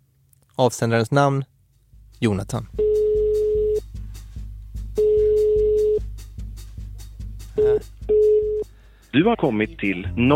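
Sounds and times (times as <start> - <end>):
speech: 0.6 - 1.5, 2.2 - 2.9, 9.2 - 10.3
soft rhythmic low thumping: 1.6 - 9.4
phone ringback tone while calling a mobile number: 2.8 - 3.8, 5.0 - 6.1, 7.6 - 8.6.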